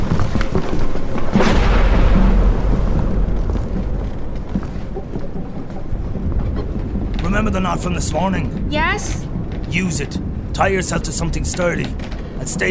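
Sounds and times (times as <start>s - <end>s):
heavy storm roaring at sea around a ship: 0.0s - 12.7s
speech: 7.5s - 12.7s.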